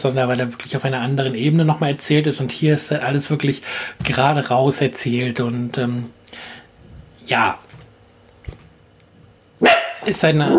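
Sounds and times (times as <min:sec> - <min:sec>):
speech: 0:00.0 - 0:06.6, 0:07.3 - 0:07.7, 0:09.6 - 0:10.5
dog barking into the microphone: 0:09.6 - 0:10.5.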